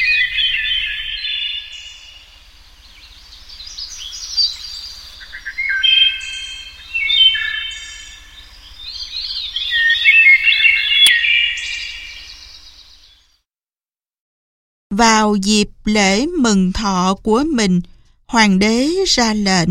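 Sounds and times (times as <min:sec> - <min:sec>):
nightingale singing: 0:00.0 - 0:13.4
speech: 0:15.0 - 0:19.6.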